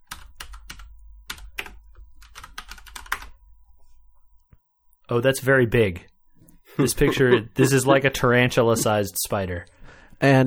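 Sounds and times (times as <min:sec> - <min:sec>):
typing on a computer keyboard: 0:00.1 - 0:03.4
speech: 0:05.1 - 0:06.1, 0:06.8 - 0:10.4
laughter: 0:06.7 - 0:09.1.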